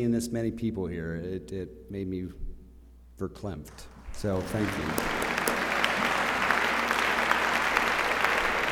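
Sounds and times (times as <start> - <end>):
speech: 0.0 - 2.5, 3.2 - 5.6
room full of people clapping: 3.9 - 8.7.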